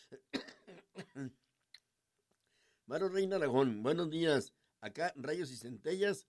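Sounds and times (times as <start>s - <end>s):
rough throat clearing: 0.0s - 1.4s
throaty coughs: 0.0s - 1.4s
speech: 1.2s - 1.4s, 2.9s - 6.2s.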